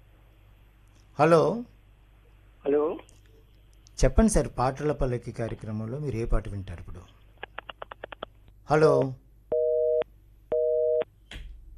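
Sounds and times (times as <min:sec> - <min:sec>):
speech: 0:01.2 - 0:01.7, 0:04.0 - 0:07.2, 0:08.7 - 0:09.2
telephone busy signal on a failed phone-in call: 0:09.5 - 0:11.0.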